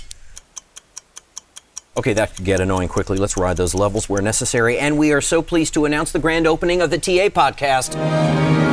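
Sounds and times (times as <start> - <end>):
countdown clock ticking: 0.1 - 5.6
speech: 2.0 - 8.6.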